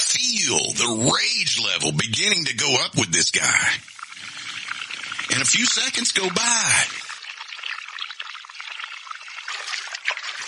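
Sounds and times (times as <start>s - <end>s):
speech: 0.2s - 3.9s, 5.3s - 7.0s
water pouring and trickling with bright splashing: 3.6s - 10.4s.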